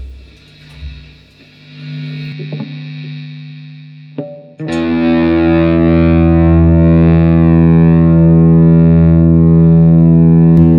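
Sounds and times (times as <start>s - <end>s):
buzzing hum: 0.0s - 10.7s
electric guitar played through a fuzz pedal: 0.0s - 10.7s.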